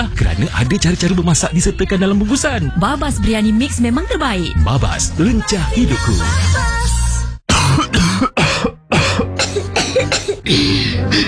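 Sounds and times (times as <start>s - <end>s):
speech: 0.0s - 7.0s
loud harsh coughs: 7.5s - 11.2s
throat clearing: 7.5s - 11.2s.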